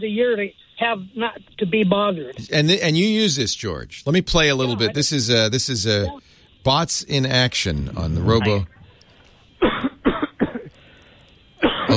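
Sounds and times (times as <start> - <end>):
speech: 0.0 - 8.8
man coughing: 9.6 - 10.8, 11.6 - 11.9.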